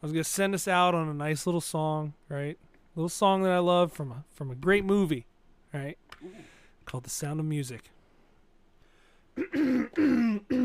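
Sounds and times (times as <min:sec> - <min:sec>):
speech: 0:00.0 - 0:08.0, 0:09.4 - 0:10.6
man with congested chest clearing throat: 0:09.4 - 0:10.6.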